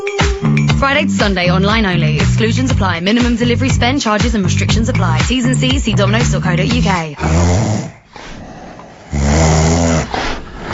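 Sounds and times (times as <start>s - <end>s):
speech: 0.8s - 7.9s
dog snoring: 7.2s - 10.7s.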